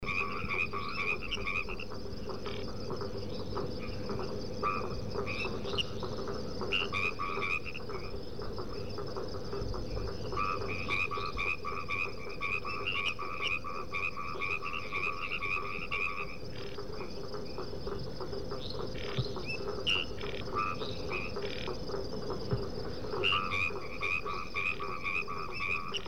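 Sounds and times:
Hypsiboas albomarginatus calling: 0.0 - 26.0.

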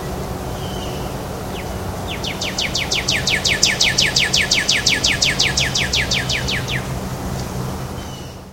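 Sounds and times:
northern cardinal singing a trill of descending slurred whistles in Miami: 0.4 - 7.2.

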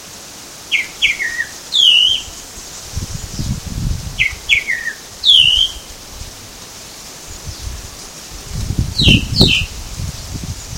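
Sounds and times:
tropical mockingbird song: 0.7 - 2.5, 4.2 - 6.0, 8.8 - 9.8.

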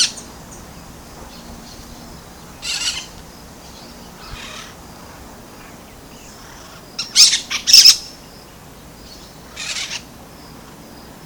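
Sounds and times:
brown-throated parakeet Aratinga pertinax screeching at Bubali in Aruba: 2.6 - 3.1, 6.4 - 8.0, 9.5 - 10.0.

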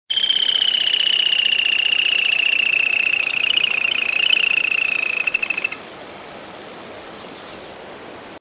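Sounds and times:
Laterallus viridis calling: 0.1 - 5.8.

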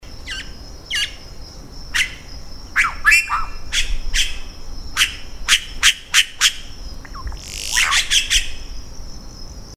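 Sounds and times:
Cacicus haemorrhous calling: 2.8 - 8.8.

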